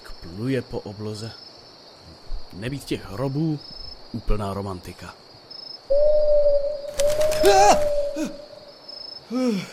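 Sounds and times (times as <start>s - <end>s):
speech: 0.2s - 1.5s, 2.5s - 5.2s, 5.9s - 6.3s, 7.4s - 8.4s, 9.3s - 9.7s
owl hooting at night: 5.9s - 8.8s
rustling bursts: 6.9s - 8.1s.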